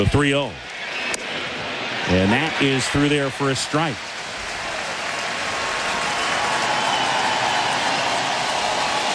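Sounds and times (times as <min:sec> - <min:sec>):
speech: 0:00.0 - 0:00.7, 0:02.0 - 0:04.1
baseball stadium crowd roaring: 0:00.0 - 0:09.1
clapping: 0:04.1 - 0:09.1.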